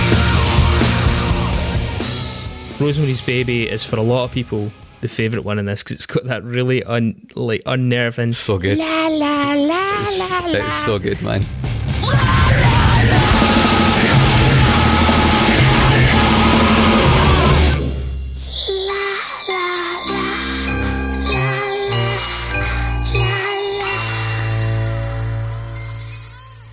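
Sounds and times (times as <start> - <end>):
dense loud music: 0.0 - 5.0, 11.0 - 18.4
speech: 2.8 - 12.2
harsh distorted screamed vocal in a song: 12.0 - 17.9
chiming bell-like tones and sparse notes: 20.0 - 26.7.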